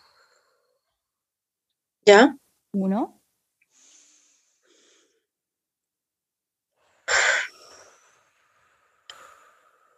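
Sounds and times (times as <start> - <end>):
person breathing in and out: 0.0 - 1.1, 3.7 - 5.4, 6.8 - 9.9
speech: 2.1 - 3.2.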